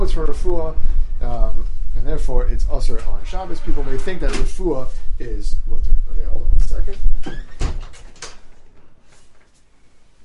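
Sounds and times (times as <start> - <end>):
speech: 0.1 - 7.5
door shut against the wind with a solid thump: 7.1 - 8.4.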